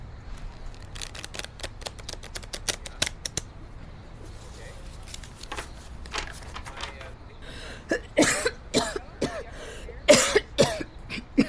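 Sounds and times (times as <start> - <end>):
tarot deck being shuffled: 0.3 - 3.5, 4.2 - 7.2
harsh rasping wet coughs: 7.9 - 9.5, 10.1 - 11.4.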